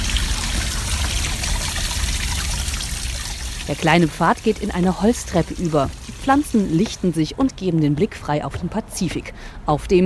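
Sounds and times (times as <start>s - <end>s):
water trickling from a small garden water feature in San Francisco: 0.0s - 7.4s
speech: 3.7s - 10.0s.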